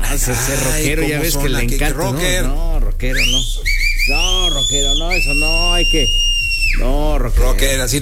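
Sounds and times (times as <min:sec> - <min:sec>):
overlapping voices: 0:00.0 - 0:07.1
steady low hum: 0:00.0 - 0:08.0
speech: 0:00.1 - 0:08.0
loud human whistling with piercing high tones: 0:03.1 - 0:07.0.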